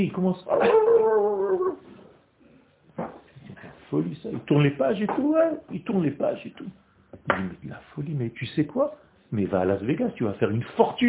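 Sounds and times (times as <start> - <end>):
speech: 0.0 - 1.1, 3.9 - 11.0
person mimicking a dog howling: 0.5 - 1.9.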